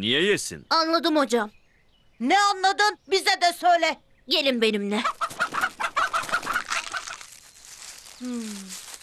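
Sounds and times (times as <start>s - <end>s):
speech: 0.0s - 1.6s, 2.2s - 5.3s, 8.2s - 8.8s
chickens clucking: 5.0s - 7.4s.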